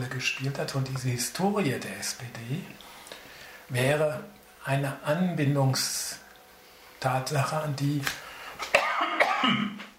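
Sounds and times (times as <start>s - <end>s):
speech: 0.1s - 3.0s, 3.7s - 6.2s, 7.0s - 8.2s, 9.4s - 9.9s
person coughing: 8.6s - 9.9s.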